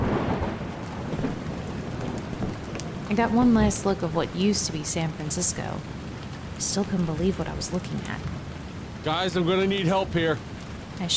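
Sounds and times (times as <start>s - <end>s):
steady heavy rain pouring down: 0.0s - 11.1s
speech: 3.1s - 6.0s, 6.6s - 8.4s, 9.0s - 11.1s.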